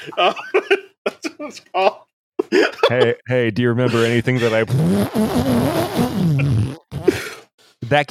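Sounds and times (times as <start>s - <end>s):
laughter: 0.0s - 4.7s
speech: 0.0s - 6.5s, 7.9s - 8.0s
fart noise sound effect: 4.0s - 7.2s.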